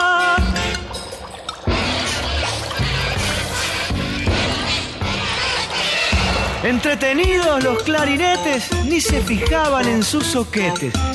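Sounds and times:
ten accordions sounding underwater in the Paraná River: 0.0s - 11.1s
gurgling, pouring water with loud splashy surges: 0.4s - 7.9s
speech: 6.7s - 11.1s.

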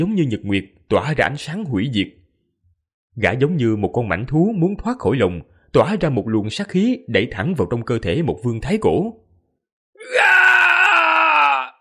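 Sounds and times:
speech: 0.0s - 2.2s, 3.2s - 9.2s, 10.0s - 10.5s
man screaming in agony: 10.0s - 11.8s.

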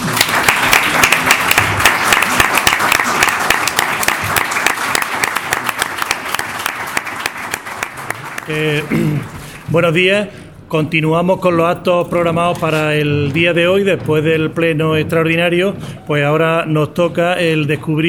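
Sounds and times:
audience applause after a municipal council session: 0.0s - 9.7s
speech: 8.5s - 18.0s.

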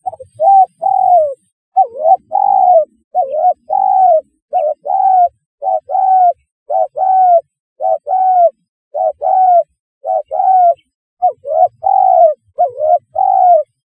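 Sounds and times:
spotted dove cooing: 0.0s - 13.8s.

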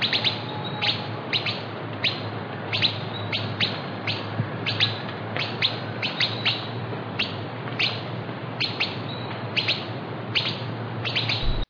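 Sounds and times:
southern chestnut-tailed antbird Myrmeciza hemimelaena hemimelaena calling: 0.0s - 8.0s, 8.6s - 11.6s
low hum: 11.4s - 11.6s.

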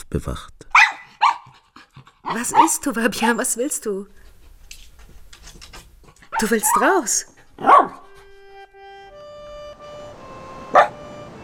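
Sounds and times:
speech: 0.1s - 0.8s, 2.3s - 4.2s, 6.4s - 8.0s
dog barking: 0.7s - 1.6s, 2.2s - 2.9s, 6.3s - 8.2s, 10.7s - 11.1s
faint sustained tonal drone: 8.0s - 11.4s.

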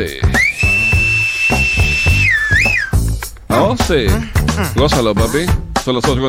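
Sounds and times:
speech: 0.0s - 0.2s, 3.6s - 6.2s
person whistling a song: 0.0s - 3.2s.

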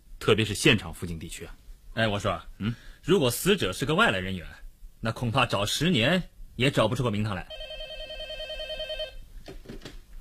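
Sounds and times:
speech: 0.2s - 7.7s
telephone ringing with a pulsing electronic tone: 7.5s - 9.2s.

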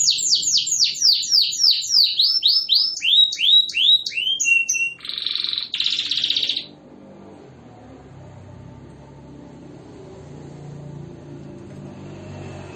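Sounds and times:
canary singing with long rolls: 0.0s - 6.8s.

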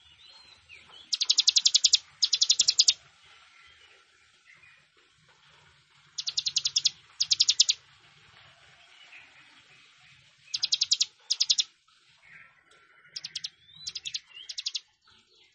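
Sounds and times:
plain prinia singing buzzy trills: 1.0s - 3.1s, 6.1s - 7.8s, 10.4s - 15.0s.

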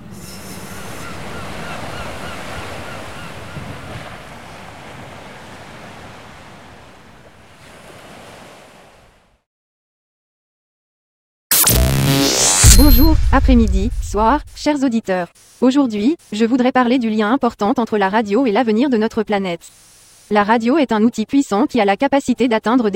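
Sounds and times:
sea waves washing onto the shore: 0.0s - 9.3s
loud burst: 11.5s - 14.7s
speech: 12.9s - 22.9s.

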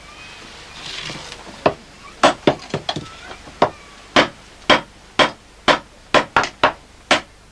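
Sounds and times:
faint hiss: 0.0s - 7.4s
village blacksmith hammering iron: 3.6s - 7.3s.

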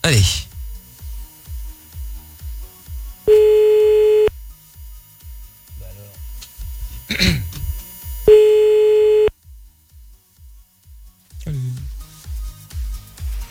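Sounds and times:
speech: 0.1s - 0.5s
telephone ringing tone while placing a call: 3.3s - 4.3s, 8.3s - 9.3s.

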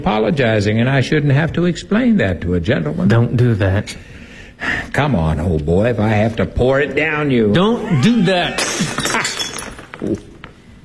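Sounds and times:
speech: 0.0s - 9.1s, 10.0s - 10.3s
drinking glass shattering: 8.5s - 10.4s
drinking glass pieces clinking and tinkling as they settle: 8.5s - 10.5s.

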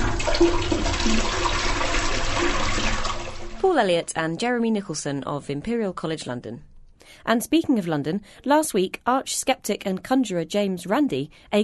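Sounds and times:
toilet flushing: 0.0s - 3.9s
speech: 0.4s - 1.3s, 3.7s - 11.6s.

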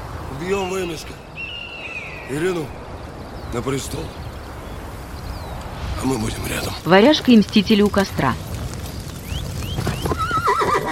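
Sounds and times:
speech: 0.4s - 1.3s, 2.3s - 2.8s, 3.5s - 4.2s, 6.0s - 8.5s
soft hoof clops: 7.8s - 10.4s
startled horse whinnying on the steppe: 9.8s - 10.9s.

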